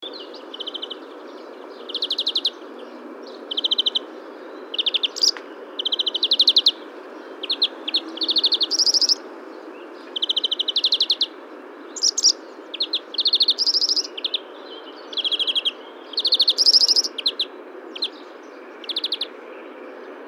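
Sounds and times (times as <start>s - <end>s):
European Greenfinch Chloris chloris singing in a garden: 0.1s - 19.3s.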